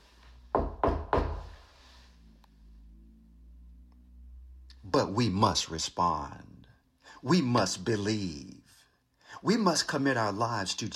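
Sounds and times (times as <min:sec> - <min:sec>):
faint hum: 0:00.0 - 0:10.9
firm knocks on a wooden door: 0:00.6 - 0:01.5
speech: 0:05.0 - 0:06.5, 0:07.2 - 0:08.6, 0:09.3 - 0:10.9.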